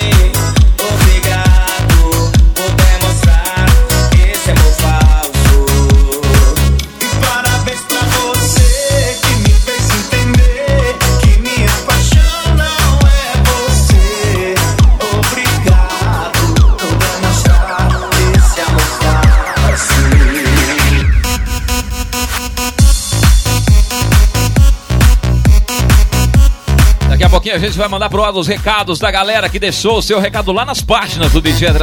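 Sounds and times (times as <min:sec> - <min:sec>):
full-band music track with driving beat, bass and bright melodic layers: 0:00.0 - 0:31.8
speech: 0:27.6 - 0:31.8.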